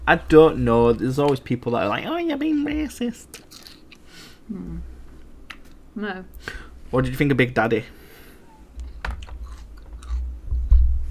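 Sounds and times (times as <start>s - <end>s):
speech: 0.1s - 3.6s, 4.5s - 4.9s, 6.0s - 8.0s
person chewing crunchy lettuce: 3.3s - 4.0s, 9.2s - 10.3s.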